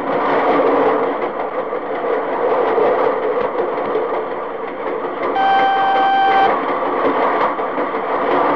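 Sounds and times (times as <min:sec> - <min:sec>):
freight train of refrigerator cars passing: 0:00.0 - 0:08.5
train whistle blast: 0:05.4 - 0:06.6.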